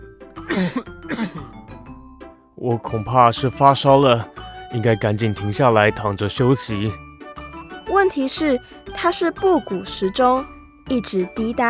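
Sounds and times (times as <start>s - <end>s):
person coughing: 0.4s - 1.6s
speech: 0.5s - 1.6s, 2.6s - 7.0s, 8.0s - 11.6s.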